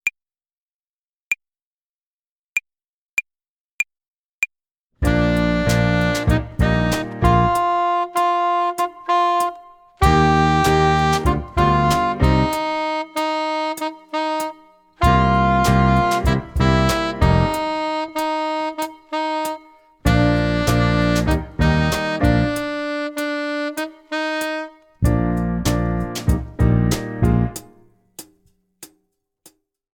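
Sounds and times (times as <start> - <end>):
hi-hat play-along for tempo and rhythm practice: 5.0 - 28.4.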